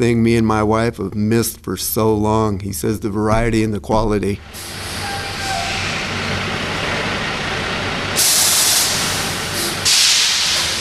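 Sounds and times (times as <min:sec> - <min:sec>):
speech: 0:00.0 - 0:04.8
semi truck idling with a low rumble: 0:03.4 - 0:10.1
semi truck air brakes hissing in sharp bursts: 0:04.5 - 0:06.2, 0:08.2 - 0:10.7.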